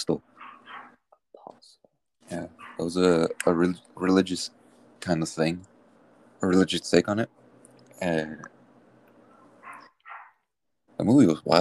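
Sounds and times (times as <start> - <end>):
speech: 0.0 - 0.2, 2.3 - 5.7, 6.4 - 7.4, 8.0 - 8.6, 11.0 - 11.5
low background hum: 0.0 - 10.3, 10.9 - 11.5
dog barking: 0.4 - 1.0, 2.6 - 2.9, 9.6 - 10.4.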